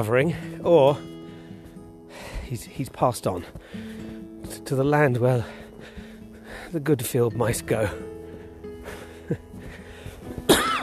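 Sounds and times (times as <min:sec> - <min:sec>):
speech: 0:00.0 - 0:01.1, 0:02.5 - 0:03.9, 0:04.5 - 0:05.6, 0:06.7 - 0:08.1
quiet breathing: 0:01.2 - 0:02.5, 0:03.4 - 0:04.4, 0:05.4 - 0:06.8, 0:07.9 - 0:10.4
person coughing: 0:10.5 - 0:10.8.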